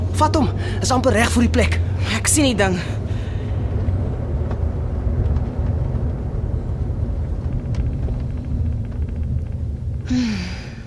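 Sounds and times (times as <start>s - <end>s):
car engine rumbling as the car creeps into a parking space: 0.0s - 10.8s
speech: 0.2s - 3.0s
faint clicks and knocks: 3.8s - 10.1s.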